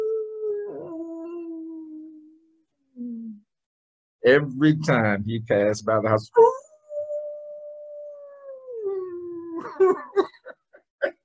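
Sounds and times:
person imitating a dog's moaning howl: 0.0s - 3.4s, 6.4s - 9.7s
speech: 4.2s - 6.6s.

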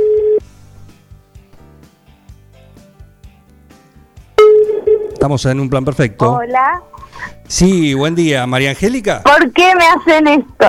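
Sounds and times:
outgoing phone call ring tone: 0.0s - 0.4s, 4.4s - 5.2s
speech: 5.2s - 10.6s.

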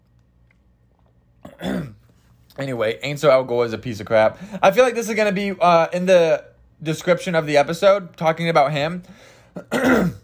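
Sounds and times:
person clearing throat: 1.4s - 2.0s, 9.6s - 10.2s
speech: 2.6s - 10.2s.

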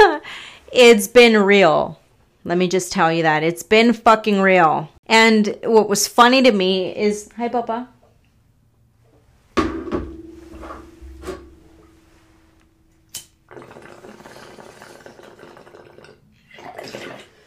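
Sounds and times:
speech: 0.7s - 8.0s
noisy sips of water: 13.5s - 17.4s.

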